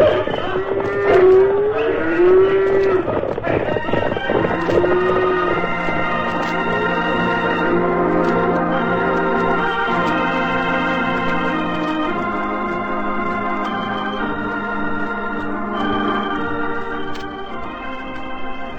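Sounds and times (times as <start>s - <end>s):
cattle herd mooing as it starts moving: 0.0s - 6.1s
continuous low rumble of the cattle herd: 0.0s - 17.0s.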